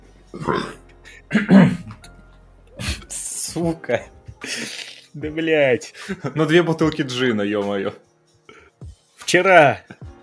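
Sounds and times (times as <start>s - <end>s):
speech: 0.4s - 1.8s, 3.6s - 4.6s, 5.2s - 8.1s, 9.3s - 10.1s
loud burp: 0.4s - 2.1s
throaty vocal noises: 0.4s - 2.1s.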